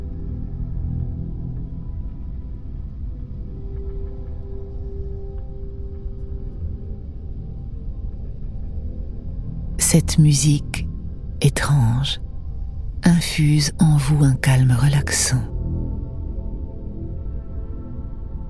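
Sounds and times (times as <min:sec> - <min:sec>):
deep steady rumbling drone of dense noise: 0:00.0 - 0:18.4
speech: 0:09.9 - 0:10.8, 0:11.4 - 0:12.2, 0:13.1 - 0:15.5.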